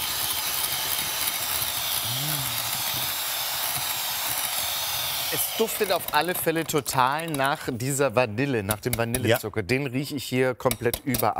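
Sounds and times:
electric hand mixer beating batter: 0:00.0 - 0:07.6
speech: 0:05.3 - 0:11.3.

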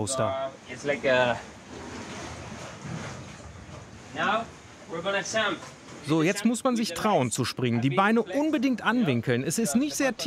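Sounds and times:
speech: 0:00.0 - 0:01.5, 0:04.1 - 0:10.2
rough sea waves surging inside a cave: 0:00.1 - 0:07.3.

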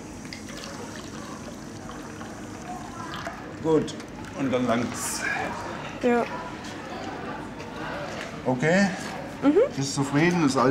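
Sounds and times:
water running from a garden hose filling a water basin: 0:00.1 - 0:05.1
speech: 0:03.6 - 0:06.5, 0:08.4 - 0:10.6.

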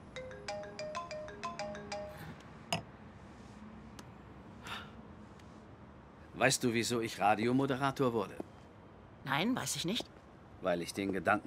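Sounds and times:
mobile phone ringtone of repeated electronic beeps: 0:00.1 - 0:02.4
speech: 0:06.4 - 0:08.5, 0:09.3 - 0:11.4.

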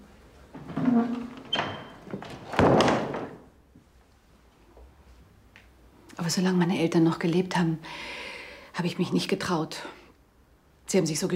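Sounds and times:
door creaking: 0:00.5 - 0:03.5
speech: 0:06.3 - 0:08.2, 0:08.8 - 0:10.0, 0:10.9 - 0:11.3.

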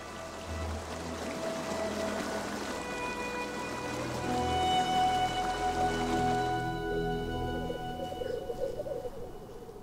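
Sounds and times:
dripping and splashing meltwater: 0:00.0 - 0:06.8
soft sustained musical tones: 0:00.0 - 0:09.8
waterfalls rushing: 0:00.0 - 0:09.8.

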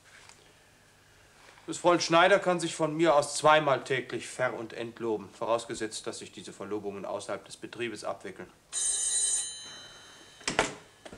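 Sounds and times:
speech: 0:01.7 - 0:09.0
telephone bell ringing in a workplace: 0:08.7 - 0:11.1.

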